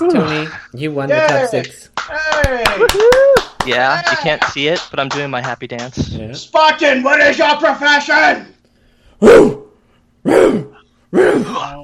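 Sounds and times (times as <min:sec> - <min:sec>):
speech: 0:00.0 - 0:08.6, 0:09.2 - 0:09.6, 0:10.2 - 0:11.8
hoarse strained dog barks: 0:09.2 - 0:09.6, 0:10.3 - 0:11.6.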